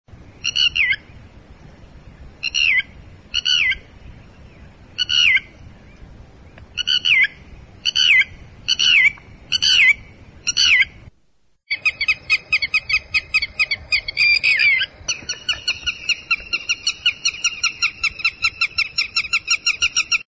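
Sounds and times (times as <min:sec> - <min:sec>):
red-wattled lapwing: 0:00.4 - 0:01.0, 0:02.4 - 0:03.8, 0:05.0 - 0:05.5, 0:06.8 - 0:11.0, 0:11.7 - 0:20.2.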